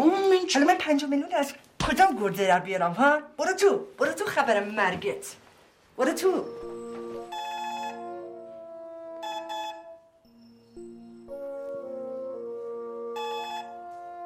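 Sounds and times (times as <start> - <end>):
speech: 0.5 - 5.4, 6.0 - 6.8
telephone ringing as a bright electronic melody: 6.4 - 8.4, 9.2 - 12.0, 13.0 - 13.9.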